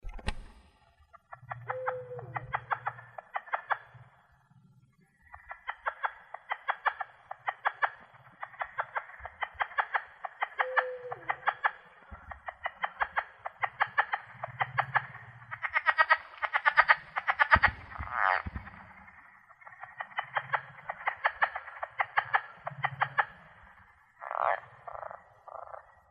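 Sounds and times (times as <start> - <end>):
Plains Leopard Frog: 0.7 - 26.0.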